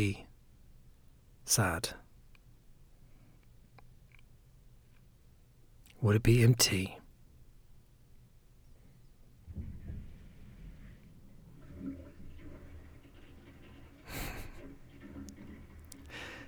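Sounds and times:
speech: 0.0s - 0.3s, 1.5s - 2.0s, 6.0s - 7.0s
toilet water rushing through wall pipes: 9.4s - 16.4s
upstairs toilet flushing: 9.5s - 16.4s.

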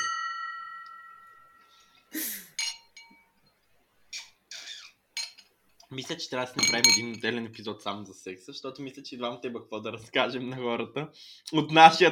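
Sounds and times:
glasses clinking together in a toast: 0.0s - 3.3s, 5.2s - 5.5s, 6.6s - 7.2s
short breathy bursts: 1.7s - 2.6s
speech: 5.9s - 12.1s.

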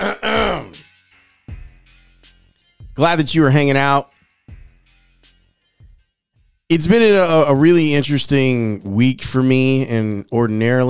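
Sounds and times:
person clearing throat: 0.0s - 0.8s
speech: 3.0s - 4.1s, 6.7s - 10.8s.

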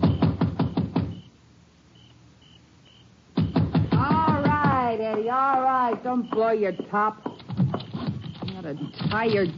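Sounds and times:
sharp knocks on the door of a dark country house: 0.0s - 1.2s, 3.4s - 8.3s
faint tone: 0.0s - 9.5s
speech: 6.0s - 7.7s, 8.6s - 9.5s.

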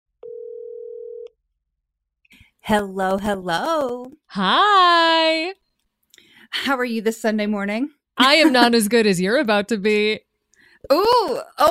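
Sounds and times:
electronic ringing tone of an outgoing phone call: 0.2s - 1.3s
speech: 2.6s - 5.6s, 6.5s - 11.7s.

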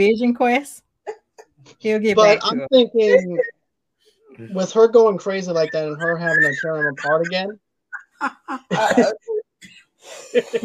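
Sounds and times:
speech: 0.0s - 0.8s, 1.7s - 3.6s, 4.4s - 7.6s, 8.2s - 9.4s, 10.0s - 10.6s
laughter: 5.6s - 9.4s
person coughing: 8.6s - 10.6s.

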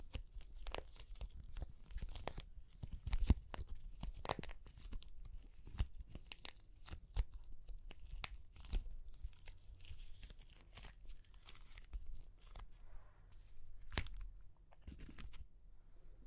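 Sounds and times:
clay cracking and crunching: 0.0s - 12.8s.

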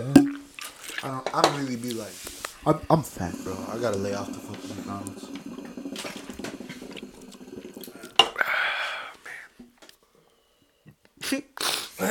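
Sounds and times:
water bubbling in a hookah as it is smoked: 0.0s - 9.2s
speech: 1.0s - 5.4s.

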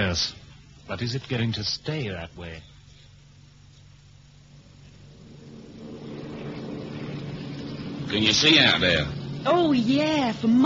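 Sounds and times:
speech: 0.0s - 2.7s, 8.1s - 10.6s
propeller airplane droning in flight: 4.5s - 10.6s.

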